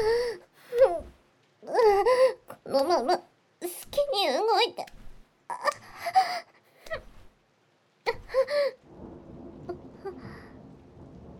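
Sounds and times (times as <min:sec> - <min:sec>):
rain-like hiss: 0:00.0 - 0:11.3
speech: 0:02.8 - 0:05.0
thunder rumbling: 0:08.2 - 0:11.3.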